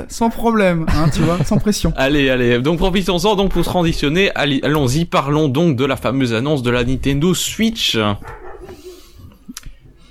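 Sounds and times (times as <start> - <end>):
speech: 0.1 - 8.4
laughter: 0.8 - 2.0, 8.5 - 9.8
small dog barking: 8.2 - 9.1.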